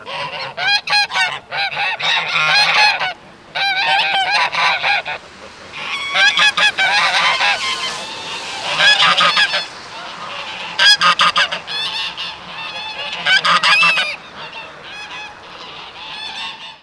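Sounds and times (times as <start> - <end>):
flock of geese cackling: 0.0 - 16.8.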